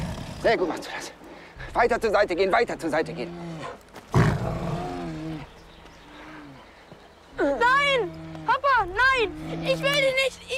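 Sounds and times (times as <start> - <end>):
bear roaring: 0.0 - 0.7, 3.0 - 5.5, 7.4 - 10.5
speech: 0.4 - 1.2, 1.8 - 3.8, 7.4 - 10.5.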